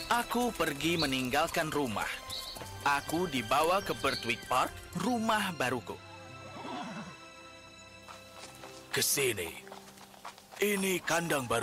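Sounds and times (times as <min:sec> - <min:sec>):
speech: 0:00.1 - 0:06.1, 0:09.0 - 0:09.6, 0:10.6 - 0:11.6
pony neighing in a wavering whinny: 0:06.4 - 0:07.2.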